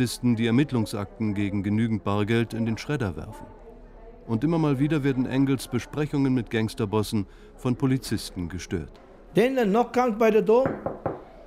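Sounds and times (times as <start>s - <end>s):
speech: 0.0s - 3.6s, 4.3s - 11.1s
quick sharp knocking on a door: 10.6s - 11.3s.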